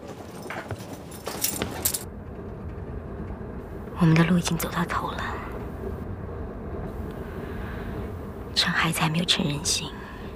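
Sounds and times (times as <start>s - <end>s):
keys jangling while fetched to swap handcuffs: 0.0s - 2.1s
low steady rumble: 0.3s - 10.3s
speech: 4.0s - 5.5s, 8.6s - 10.0s.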